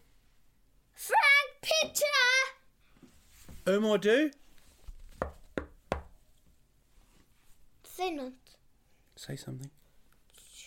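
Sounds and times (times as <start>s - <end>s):
speech: 1.6s - 2.3s, 3.7s - 4.4s, 8.0s - 8.4s, 9.2s - 9.8s
sharp knocks on a door: 5.2s - 6.2s.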